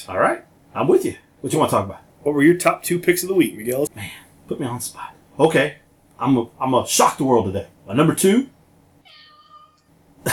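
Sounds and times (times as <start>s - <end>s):
speech: 0.0s - 8.6s
cat meowing: 9.0s - 9.9s.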